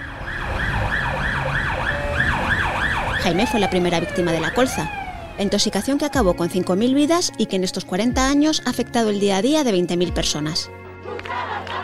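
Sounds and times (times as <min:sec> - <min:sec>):
ambulance siren wailing: 0:00.0 - 0:06.6
low rumble of road traffic: 0:00.0 - 0:07.2
speech: 0:03.2 - 0:10.8.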